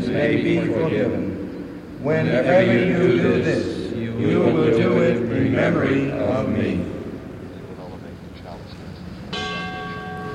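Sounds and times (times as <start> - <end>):
soft indistinct voice and murmur: 0.0 - 10.3
speech: 0.1 - 7.0
altar bell struck during Mass as the chalice is raised: 9.3 - 10.3.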